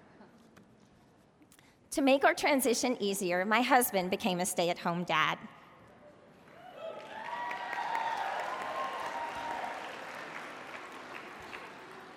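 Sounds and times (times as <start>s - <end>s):
speech: 1.9s - 5.6s
faint whoops: 6.6s - 9.9s
audience applause: 6.8s - 12.1s.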